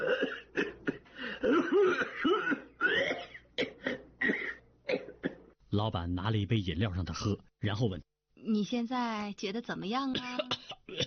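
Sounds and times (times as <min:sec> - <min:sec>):
violent coughing fit with harsh hacking coughs: 0:00.0 - 0:05.6, 0:10.2 - 0:11.0
speech: 0:05.8 - 0:11.0.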